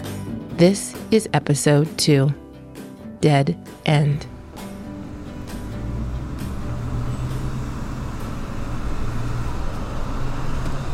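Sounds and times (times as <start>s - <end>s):
speech: 0.6s - 2.4s, 3.2s - 4.3s
car driving on road with road rumble and tyre noise: 4.0s - 10.9s.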